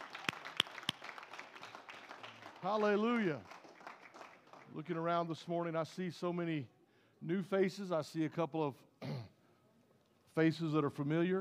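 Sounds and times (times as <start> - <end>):
sharp loud claps: 0.0 - 4.7
congregation clapping hands: 0.0 - 5.5
speech: 2.6 - 3.5, 4.7 - 9.2, 10.4 - 11.3.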